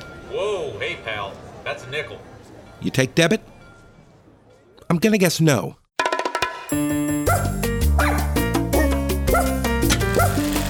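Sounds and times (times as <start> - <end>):
speech: 0.3 - 3.5, 4.9 - 5.8, 6.7 - 7.0
loud steady instrumental music: 6.0 - 10.6
dog barking and yipping: 7.3 - 10.6.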